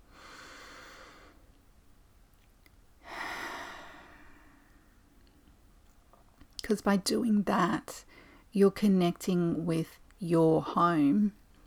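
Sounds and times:
deep breath taken slowly: 0.0 - 1.5, 3.0 - 5.0
speech: 6.7 - 11.4.

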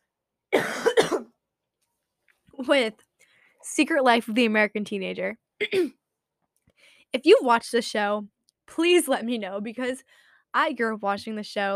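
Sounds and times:
cough: 0.5 - 1.4, 5.6 - 6.0
speech: 2.6 - 6.0, 7.1 - 11.7.

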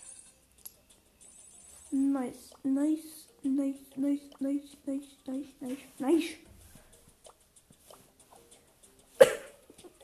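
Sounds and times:
speech: 1.9 - 6.5
person coughing: 9.2 - 9.6.

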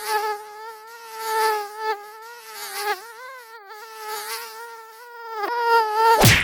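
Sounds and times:
mosquito buzzing: 0.0 - 6.4
sharp burst of noise: 6.2 - 6.4.

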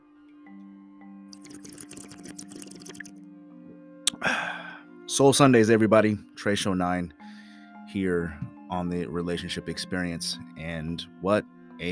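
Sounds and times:
slurp of hot coffee: 1.4 - 3.1
speech: 5.1 - 7.2, 7.9 - 11.8.

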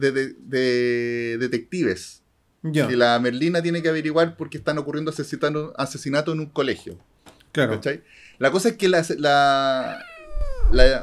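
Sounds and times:
speech: 0.0 - 11.0
cat meowing: 9.7 - 11.0.

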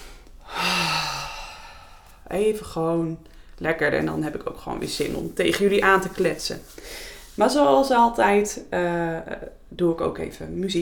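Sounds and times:
long deep exhale during a breathing exercise: 0.0 - 2.2
speech: 2.3 - 10.8.

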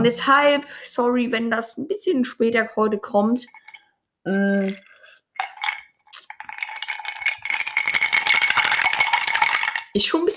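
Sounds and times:
speech: 0.0 - 3.6, 4.2 - 4.9, 10.0 - 10.3
ice cubes clinking in a small glass: 4.5 - 10.1.

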